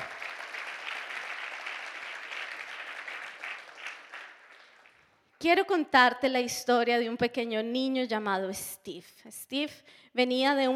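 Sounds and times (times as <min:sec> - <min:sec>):
crowd clapping: 0:00.0 - 0:05.4
speech: 0:05.4 - 0:10.7.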